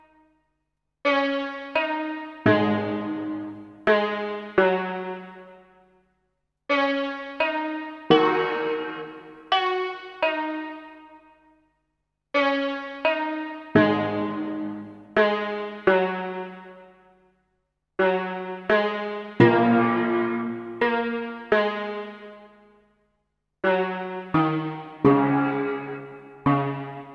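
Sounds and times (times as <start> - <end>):
Chinese melody: 1.1 - 5.4, 6.7 - 11.2, 12.4 - 16.6, 18.0 - 22.2, 23.7 - 27.1.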